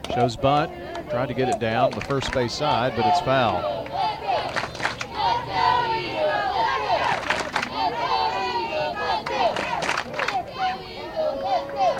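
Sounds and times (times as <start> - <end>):
speech: 0.1 - 3.8
baseball fans in the stands cheering and shouting: 2.6 - 11.9.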